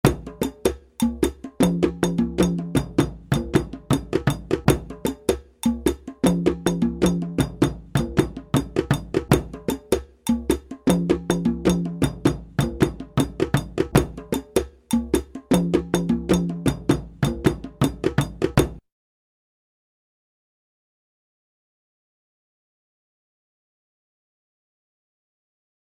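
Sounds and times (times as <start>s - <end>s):
dundun drum ensemble: 0.0s - 18.8s.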